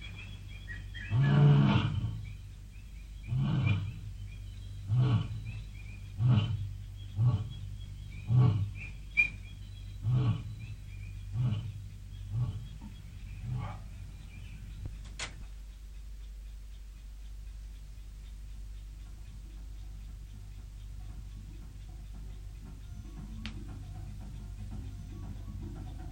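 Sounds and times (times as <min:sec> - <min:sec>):
lion roaring in deep rhythmic grunts: 0:01.0 - 0:02.2, 0:03.2 - 0:04.1, 0:04.8 - 0:07.6, 0:08.2 - 0:08.9, 0:10.0 - 0:14.0.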